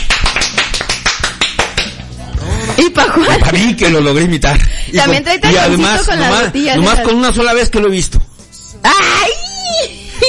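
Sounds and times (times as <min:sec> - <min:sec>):
audience applauding performers with steady rhythmic clapping: 0:00.0 - 0:02.2
laughter: 0:02.4 - 0:03.9
speech: 0:02.8 - 0:08.2.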